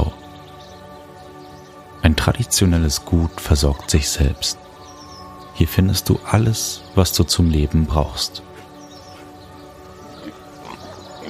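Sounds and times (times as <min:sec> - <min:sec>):
speech: 0:02.0 - 0:04.6, 0:05.6 - 0:08.5
pigs grunting and snorting in a stall on a traditional farm: 0:08.4 - 0:11.2.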